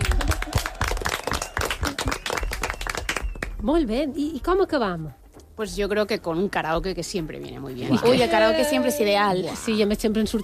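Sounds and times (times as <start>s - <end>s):
crowd clapping: 0.0s - 3.6s
speech: 3.6s - 10.4s.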